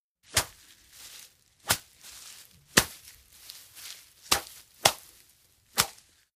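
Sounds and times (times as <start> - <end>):
machete hacking through jungle: 0.3 - 0.6, 1.6 - 1.9, 2.7 - 3.0, 4.3 - 5.1, 5.7 - 6.0.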